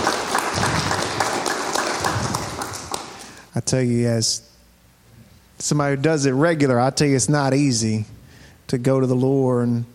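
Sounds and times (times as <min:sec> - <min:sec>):
crowd of people clapping hands in sustained dense applause: 0:00.0 - 0:03.5
speech: 0:03.7 - 0:04.5, 0:05.6 - 0:09.9.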